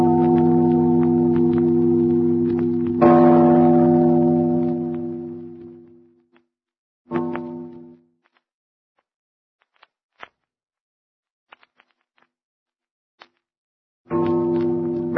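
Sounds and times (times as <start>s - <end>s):
large tower bell tolling: 0.0s - 5.9s, 14.1s - 15.1s.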